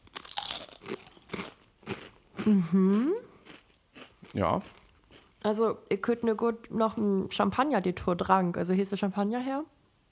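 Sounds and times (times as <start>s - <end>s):
truffle-flavoured potato chips crunching during tasting: 0.0s - 5.5s
speech: 2.4s - 3.2s, 4.4s - 4.8s, 5.4s - 9.8s.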